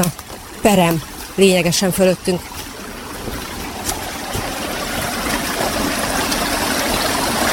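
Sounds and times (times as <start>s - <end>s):
speech: 0.0s - 2.5s
creek spilling over small waterfalls at the bottom of a valley: 0.0s - 7.5s.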